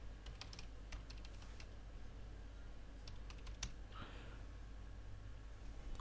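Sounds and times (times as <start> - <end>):
low steady hum: 0.0 - 6.0
typing on a computer keyboard: 0.2 - 1.7, 3.0 - 3.8.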